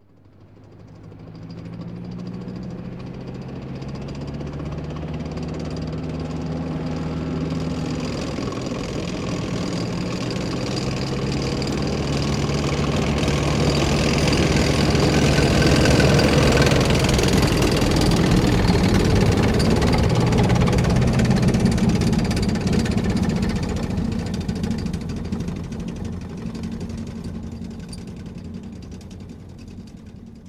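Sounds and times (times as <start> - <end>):
tank passing by with heavy clatter: 0.1 - 30.4.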